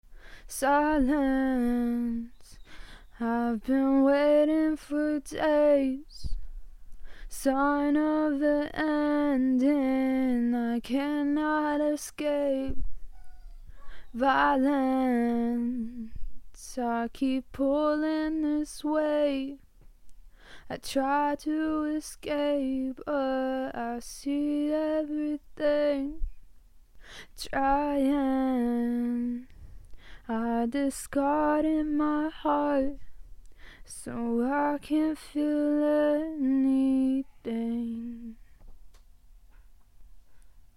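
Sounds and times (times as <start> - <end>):
acoustic a cappella singing in Dm: 0.5 - 6.4, 7.3 - 12.8, 14.1 - 19.6, 20.7 - 26.4, 27.4 - 29.6, 30.2 - 33.1, 33.9 - 38.5.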